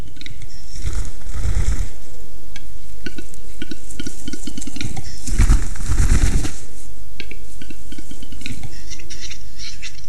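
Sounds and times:
faint bird calls: 0.0 - 10.0
steady outdoor hiss: 0.0 - 10.0
displaying capercaillie male wing whirring: 0.6 - 2.1, 3.9 - 6.9.

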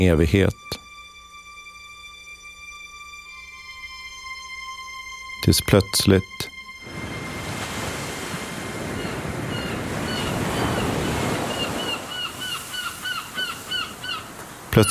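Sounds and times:
speech: 0.0 - 0.8, 5.5 - 6.5
waves breaking on a deserted beach: 6.8 - 14.8
crow cawing: 8.8 - 14.7.

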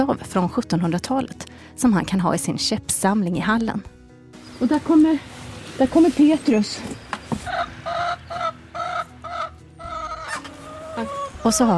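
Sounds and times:
speech: 0.0 - 4.0, 4.6 - 7.0, 11.0 - 11.7
hens clucking: 7.1 - 11.7.

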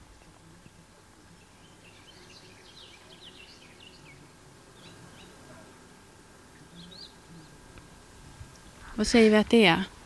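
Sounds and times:
steady outdoor hum: 0.0 - 10.0
garden warbler singing: 1.3 - 5.7, 6.6 - 7.6
speech: 9.0 - 10.0.

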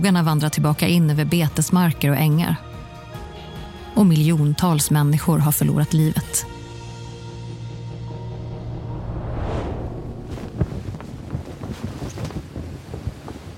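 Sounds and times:
speech: 0.0 - 2.7, 4.0 - 6.6
Mediterranean wind blowing over the coast of Sicily: 10.0 - 13.5.

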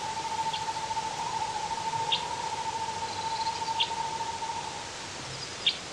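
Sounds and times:
Northern Hawk Owl trill: 0.0 - 5.8.

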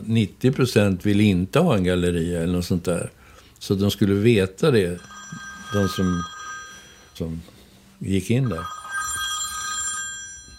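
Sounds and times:
speech: 0.1 - 6.3, 7.2 - 8.8
telephone ringing: 5.0 - 10.5.

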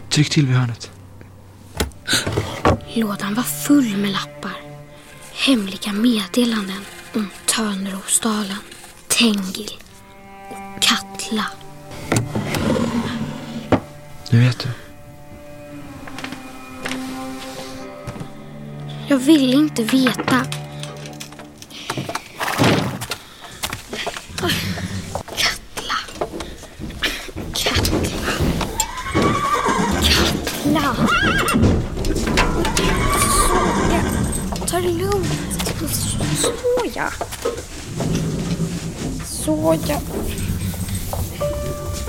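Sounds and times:
speech: 0.2 - 0.9, 2.9 - 4.6, 5.4 - 9.8, 10.8 - 12.4, 14.3 - 14.8, 19.1 - 20.6, 39.7 - 40.4
sliding door: 12.0 - 13.8, 27.6 - 36.7, 37.4 - 42.0
horse neighing: 12.3 - 13.8, 28.7 - 39.0
horse hooves clip-clopping: 20.1 - 42.0.

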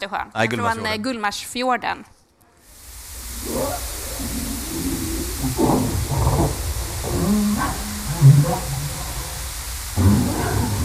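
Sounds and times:
speech: 0.0 - 2.2
underwater background hiss in Gullmarsfjorden: 2.6 - 10.8
harbor seal underwater barking calls in Gullmarsfjorden: 3.2 - 10.8.

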